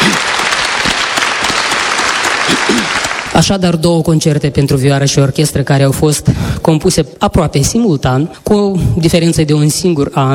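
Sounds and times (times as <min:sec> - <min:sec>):
audience applause: 0:00.0 - 0:03.4
speech: 0:03.4 - 0:10.3.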